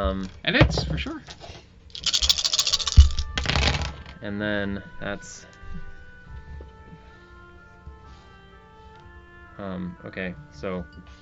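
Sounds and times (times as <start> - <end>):
speech: 0.0 - 1.6, 4.2 - 5.9, 9.6 - 11.2
dice clattering across a hard tabletop: 1.9 - 4.2.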